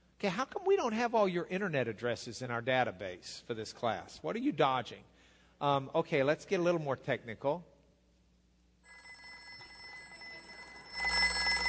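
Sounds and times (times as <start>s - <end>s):
speech: 0.2s - 7.7s
old-fashioned rotary telephone bell ringing: 8.8s - 11.6s.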